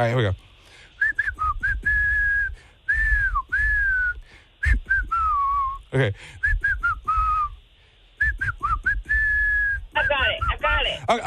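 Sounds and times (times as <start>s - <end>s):
speech: 0.0s - 0.5s, 5.9s - 6.4s, 10.9s - 11.2s
person whistling a pop song melody: 1.0s - 7.6s, 8.2s - 10.5s.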